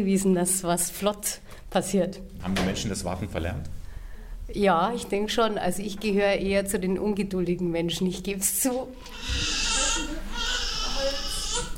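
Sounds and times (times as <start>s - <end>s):
speech: 0.0s - 3.8s, 4.5s - 9.6s
newborn baby crying: 9.0s - 11.7s.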